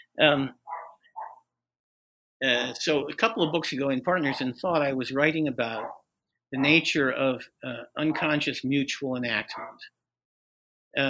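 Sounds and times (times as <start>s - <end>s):
speech: 0.2s - 0.6s, 2.4s - 10.0s
dog barking in a home: 0.7s - 1.4s, 4.2s - 4.5s, 5.7s - 6.0s, 6.6s - 6.8s, 9.5s - 9.9s.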